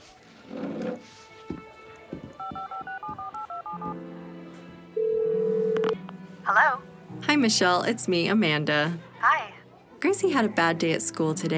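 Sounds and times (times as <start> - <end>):
telephone keypad DTMF tones dialing a phone number: 2.4 - 4.0, 5.0 - 6.0
speech: 6.6 - 9.1, 10.0 - 11.5.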